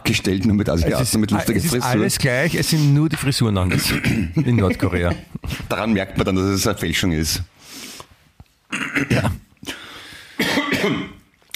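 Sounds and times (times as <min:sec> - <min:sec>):
speech: 0:00.1 - 0:07.6, 0:10.8 - 0:11.1
laughter: 0:00.7 - 0:02.5, 0:04.3 - 0:05.6
person clearing throat: 0:03.7 - 0:04.5, 0:08.7 - 0:09.5, 0:10.4 - 0:11.3.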